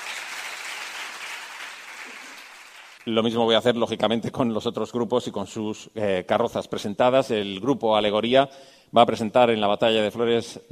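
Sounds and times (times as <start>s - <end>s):
crowd applause at a flower-battle parade: 0.0s - 3.0s
speech: 3.0s - 10.7s.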